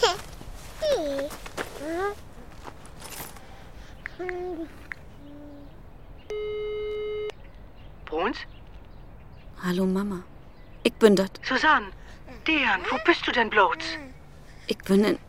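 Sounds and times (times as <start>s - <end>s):
speech: 4.2s - 4.8s, 8.3s - 8.6s, 9.6s - 14.1s, 14.7s - 15.2s
longer steady telephone tone: 6.3s - 7.4s.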